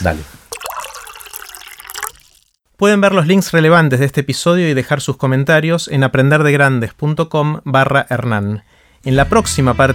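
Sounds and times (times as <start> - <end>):
speech: 0.0 - 0.4, 2.8 - 9.9
water pouring into a glass to drink: 0.5 - 2.6.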